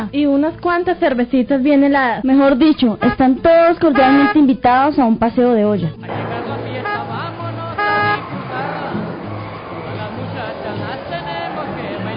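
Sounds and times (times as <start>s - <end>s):
speech: 0.0s - 6.2s
car and motorbike engines rumbling: 2.6s - 4.9s, 6.0s - 12.1s
short loud horn toot: 2.8s - 4.5s, 6.1s - 12.1s
steady crowd chatter: 6.1s - 12.1s.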